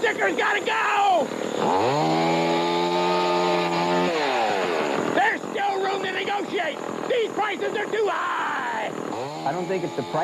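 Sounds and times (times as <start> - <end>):
speech: 0.1 - 2.5, 6.6 - 8.6, 9.2 - 10.2
chainsaw revving: 1.2 - 10.2.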